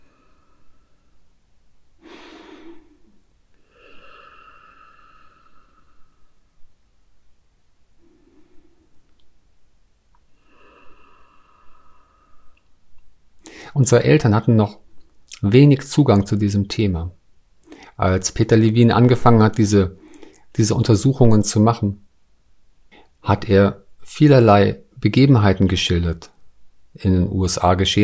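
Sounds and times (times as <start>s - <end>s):
slow deep breathing: 0.0s - 1.4s, 2.0s - 6.8s, 7.9s - 9.2s, 10.2s - 12.8s, 13.4s - 13.8s, 17.6s - 18.0s, 20.0s - 20.5s
speech: 13.8s - 14.8s, 15.4s - 17.2s, 18.0s - 20.0s, 20.6s - 22.1s, 23.2s - 26.3s, 26.9s - 28.0s.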